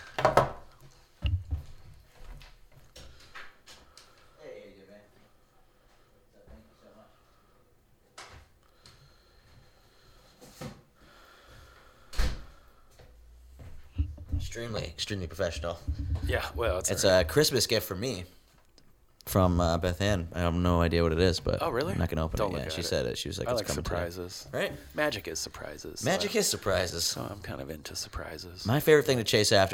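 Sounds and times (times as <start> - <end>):
knocking on a door: 13.9 - 17.4
speech: 14.5 - 18.4, 19.3 - 29.7.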